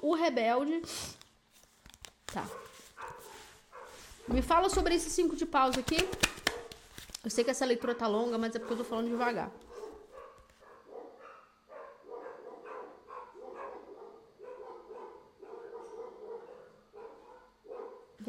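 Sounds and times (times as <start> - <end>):
speech: 0.1 - 1.2, 2.3 - 3.2, 4.3 - 6.4, 7.2 - 9.7
several dogs barking at a passing Yorkshire terrier: 2.5 - 4.3, 7.8 - 18.2.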